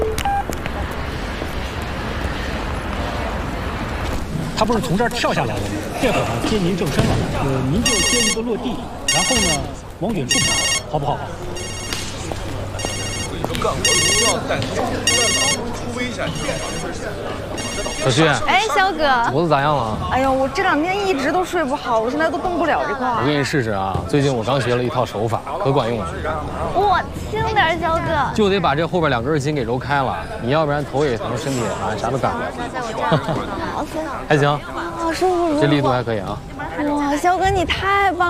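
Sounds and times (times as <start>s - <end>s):
busy chatter and voices of several people talking: 0.0s - 38.2s
speech: 4.6s - 11.8s, 13.6s - 38.2s
mobile phone ringtone: 7.8s - 8.4s, 9.1s - 9.7s, 10.3s - 11.0s, 11.6s - 15.7s, 16.3s - 18.4s.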